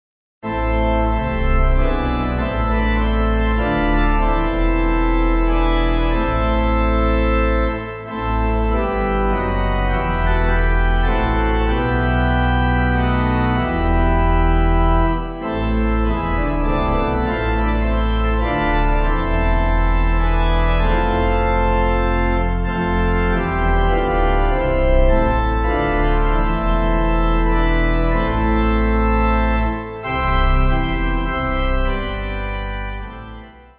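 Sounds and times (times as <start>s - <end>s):
pipe organ hymn: 0.4s - 33.7s.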